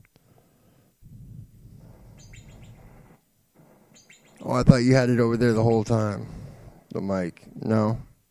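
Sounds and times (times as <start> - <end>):
low rumbling background: 1.0 - 8.2
groundhog whistling chirps: 1.8 - 4.5
speech: 4.4 - 8.1.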